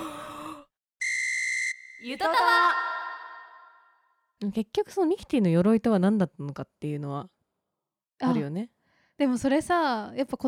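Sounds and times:
person imitating a yawn: 0.0s - 0.7s
high whistle-like tone: 1.0s - 2.1s
speech: 2.0s - 2.9s, 4.4s - 7.4s, 8.2s - 10.4s.

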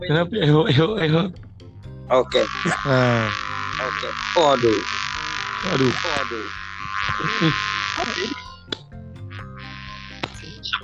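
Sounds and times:
speech: 0.0s - 1.4s, 2.1s - 3.4s, 4.0s - 5.0s, 5.6s - 8.8s
mosquito buzzing whine close to the microphone: 2.1s - 10.8s.

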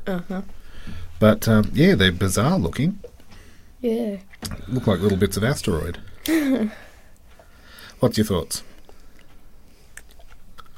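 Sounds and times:
speech: 0.1s - 3.1s, 3.8s - 6.8s, 8.0s - 8.7s
munching white chocolate coated dark cookie bits: 9.9s - 10.7s.

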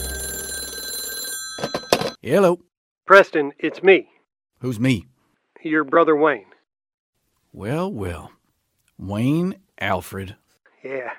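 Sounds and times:
telephone ringing: 0.0s - 2.2s
speech: 1.6s - 6.5s, 7.5s - 8.4s, 9.0s - 11.1s.

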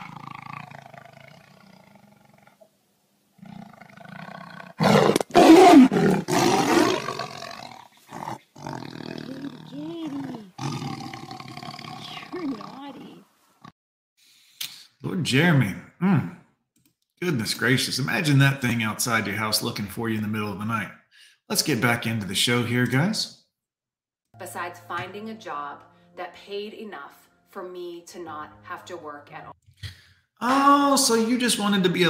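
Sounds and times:
tiger roaring: 0.0s - 2.7s, 3.4s - 12.8s
speech: 15.2s - 16.4s, 17.3s - 23.4s, 24.9s - 29.6s, 30.4s - 32.0s.

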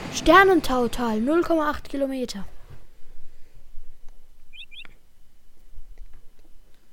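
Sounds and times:
speech: 0.2s - 2.5s
bird giving high bright chirps: 4.5s - 5.0s.

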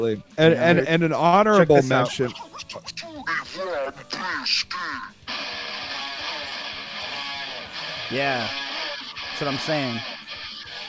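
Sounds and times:
speech: 0.0s - 5.6s, 8.1s - 8.7s, 9.4s - 10.1s
recorded distorted guitar riff with bent notes: 5.3s - 10.8s.

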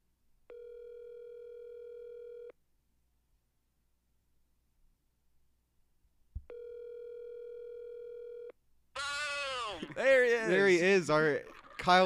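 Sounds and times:
telephone line tone: 0.5s - 2.6s, 6.5s - 8.5s
speech: 9.9s - 12.0s.

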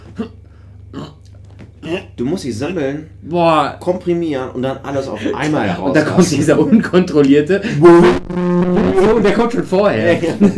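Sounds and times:
small weak burps: 0.0s - 2.1s
speech: 0.2s - 1.2s, 1.8s - 10.5s
laughter: 9.9s - 10.5s.

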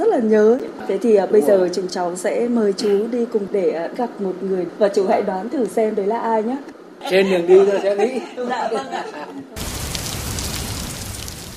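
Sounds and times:
speech: 0.0s - 9.7s
laughter: 7.3s - 9.6s
heavy rain downpour: 9.6s - 11.5s.

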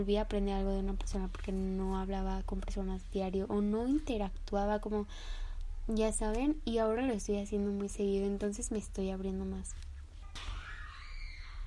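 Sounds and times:
speech: 0.0s - 9.9s
low steady rumble: 0.0s - 10.3s
people screaming: 10.4s - 11.6s.

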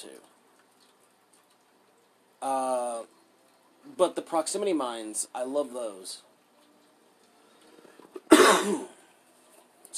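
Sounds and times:
speech: 2.4s - 3.1s, 4.0s - 6.3s, 8.6s - 8.9s
person coughing: 8.2s - 9.0s.

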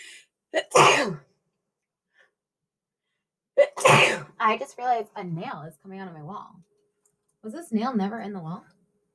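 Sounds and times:
person sneezing: 0.6s - 1.2s, 3.6s - 4.3s
speech: 4.4s - 6.7s, 7.4s - 8.8s.

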